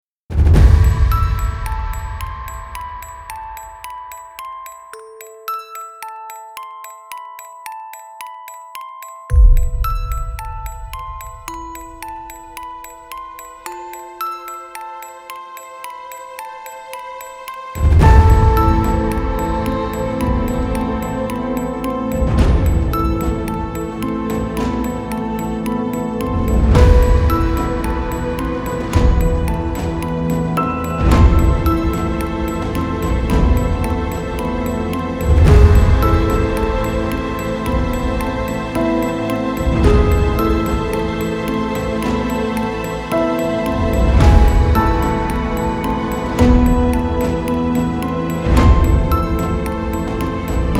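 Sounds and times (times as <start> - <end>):
scary horror suspense background music: 0.3 - 4.0, 14.9 - 50.7.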